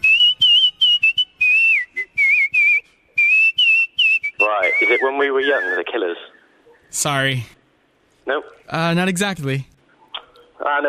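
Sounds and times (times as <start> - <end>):
person whistling a melody: 0.0 - 5.8
speech: 5.2 - 7.6, 8.3 - 9.7, 10.6 - 10.8.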